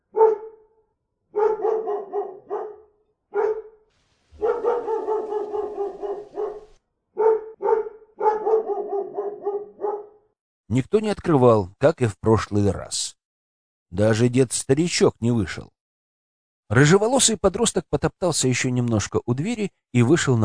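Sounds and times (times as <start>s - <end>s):
dog barking hoarsely: 0.0s - 0.6s, 1.3s - 3.8s, 4.4s - 10.2s
speech: 10.7s - 13.2s, 13.9s - 15.8s, 16.7s - 20.4s.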